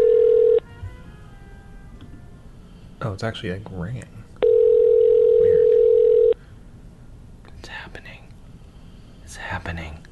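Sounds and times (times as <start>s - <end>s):
phone line ringback tone of an outgoing call: 0.0s - 0.7s, 4.4s - 6.4s
speech: 3.1s - 4.3s, 9.5s - 10.1s.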